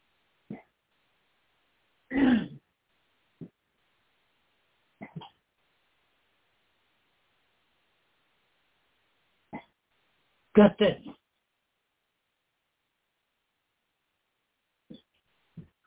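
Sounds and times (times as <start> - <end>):
person clearing throat in short rasping bursts: 2.1 - 2.6
speech: 10.6 - 11.2.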